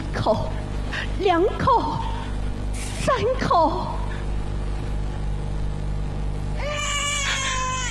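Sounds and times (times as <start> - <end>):
steady low hum: 0.0 - 7.8
speech: 0.2 - 2.2, 3.1 - 4.0
newborn baby crying with a thin high-pitched wail: 6.6 - 7.8.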